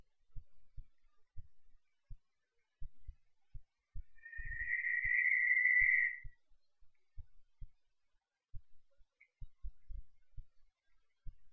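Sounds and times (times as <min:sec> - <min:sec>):
Cape Verde barn owl screaming: 0:04.3 - 0:06.2.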